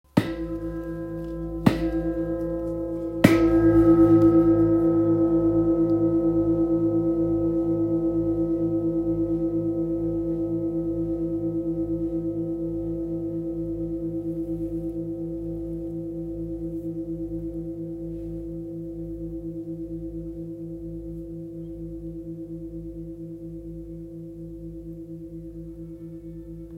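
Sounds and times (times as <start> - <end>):
large singing bowl: 0.1 - 26.7.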